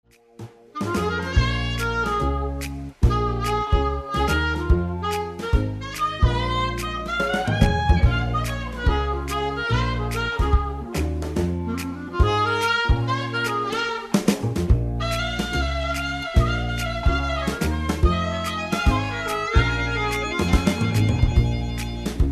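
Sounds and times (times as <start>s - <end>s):
jazz saxophone: 0.2s - 22.3s.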